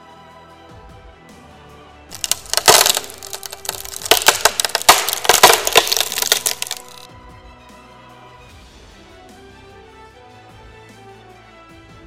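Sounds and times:
lock being forced with a mechanical arm and broken open: 2.1 - 7.1.

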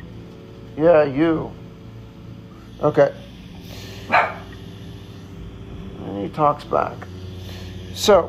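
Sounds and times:
speech: 0.8 - 1.6, 2.8 - 4.2, 6.2 - 7.1, 8.0 - 8.2
dog barking: 4.1 - 4.6.

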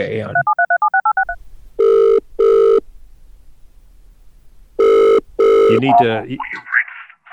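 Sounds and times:
speech: 0.0 - 0.6, 5.7 - 6.7
double ringing tone through a phone line: 0.4 - 2.8, 4.8 - 6.0
telephone keypad dialing beeps: 0.4 - 2.8.

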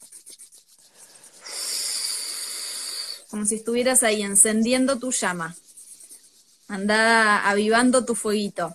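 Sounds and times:
palms rubbed together briskly: 0.0 - 8.7
breathy hiss during a deep-breathing exercise: 0.5 - 3.5
speech: 3.3 - 5.6, 6.7 - 8.7.

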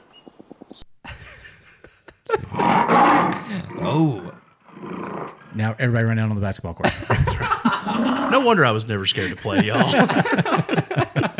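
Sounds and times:
laughter: 1.1 - 4.3, 6.8 - 11.3
panther growling and roaring: 2.3 - 6.3, 7.2 - 10.7
speech: 3.9 - 4.4, 5.6 - 10.8.

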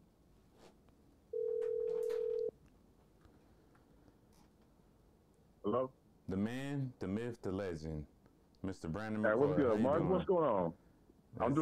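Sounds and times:
faint noise: 0.0 - 11.6
telephone ringback tone heard by a caller: 1.3 - 2.5
speech: 5.7 - 11.6.

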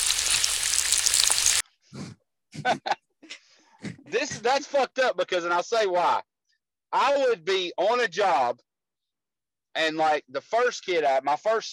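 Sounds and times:
egg frying in hot oil: 0.0 - 1.6
speech: 2.5 - 3.0, 4.4 - 6.3, 6.9 - 8.7, 9.8 - 11.7.

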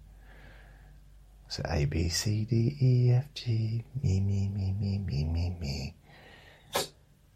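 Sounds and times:
speech: 1.6 - 6.0
person sneezing: 6.6 - 7.0.

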